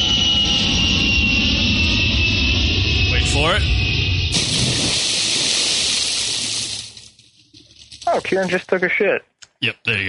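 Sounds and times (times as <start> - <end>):
airplane jet engine roar: 0.0 - 7.0
speech: 8.2 - 10.0.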